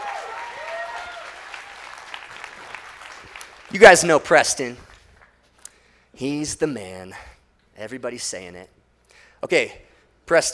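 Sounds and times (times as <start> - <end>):
audience applause: 0.0 - 4.1
speech: 3.7 - 4.9, 6.2 - 8.8, 9.4 - 10.5.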